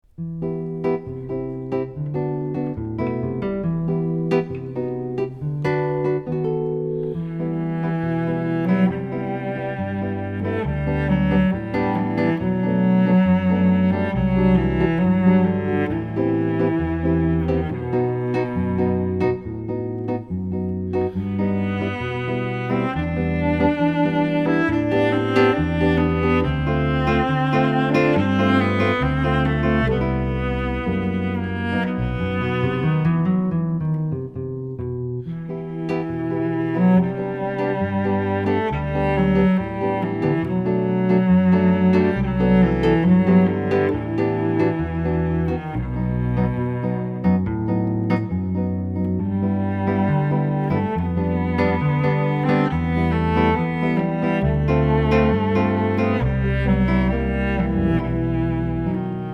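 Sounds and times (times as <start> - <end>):
cello playing a pavane: 0.0 - 59.3.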